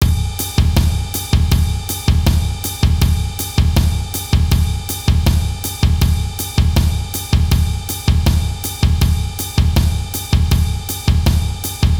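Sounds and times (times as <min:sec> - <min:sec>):
intermediate samba snare drum: 0:00.0 - 0:11.9.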